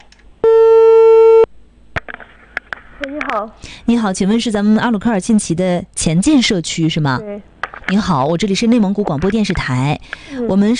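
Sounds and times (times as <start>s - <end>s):
telephone ringback tone while calling a community office in Inner Mongolia: 0.4s - 1.5s
speech: 3.1s - 10.7s.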